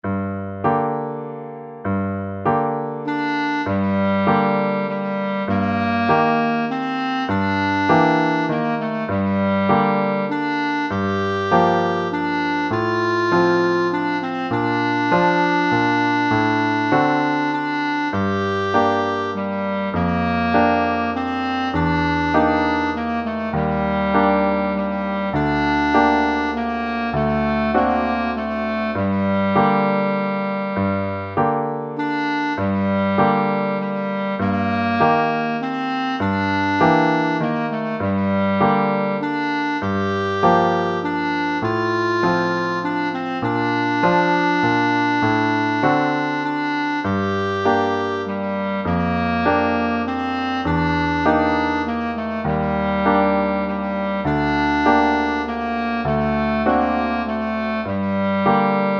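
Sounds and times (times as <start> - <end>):
clarinet: 0.0 - 58.9
piano: 0.0 - 58.9.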